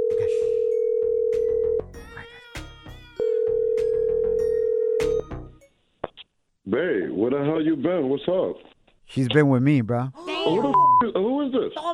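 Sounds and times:
phone ringback tones: 0.0 - 1.8, 3.2 - 5.2
speech: 6.8 - 11.9.

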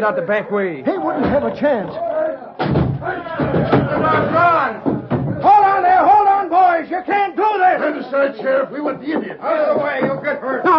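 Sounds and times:
speech: 0.0 - 2.1, 2.7 - 4.9, 7.0 - 10.7
crowd of many agitated voices: 0.0 - 10.7
heavy thuds of a door being forced: 2.6 - 5.7.

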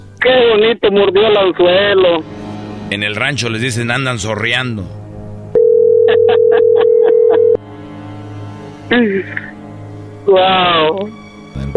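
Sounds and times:
speech: 0.2 - 5.0, 8.9 - 9.4, 10.3 - 11.7
telephone dial tone: 5.6 - 7.6
laughter: 6.1 - 7.6.

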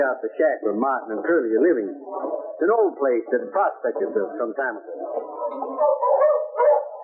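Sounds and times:
speech: 0.0 - 6.0
several dogs barking and yowling: 2.1 - 2.6, 4.9 - 7.0.

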